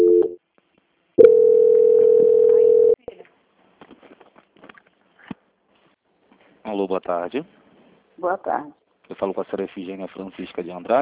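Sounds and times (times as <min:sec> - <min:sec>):
telephone call-transfer tone on hold: 0:00.0 - 0:00.4, 0:01.2 - 0:03.0
speech: 0:06.8 - 0:07.6, 0:08.2 - 0:11.0.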